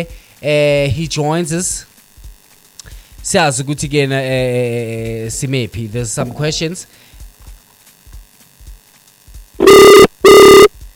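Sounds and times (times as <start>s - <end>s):
speech: 0.0s - 1.9s, 3.2s - 7.1s
electronic ringback tones of an outgoing phone call: 9.6s - 10.8s.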